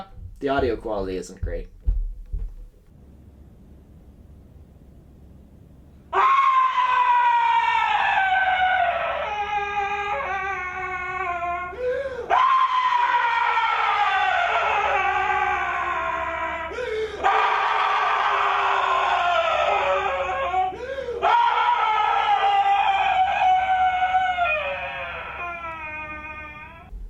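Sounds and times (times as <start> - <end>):
speech: 0.0 - 1.8
man screaming in a performance art piece: 6.1 - 26.9.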